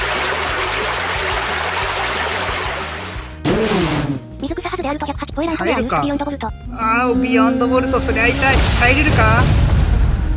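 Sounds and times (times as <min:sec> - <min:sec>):
video game flooding water attack: 0:00.0 - 0:04.0
low rhythmic pulse: 0:04.2 - 0:09.4
speech: 0:04.8 - 0:09.7.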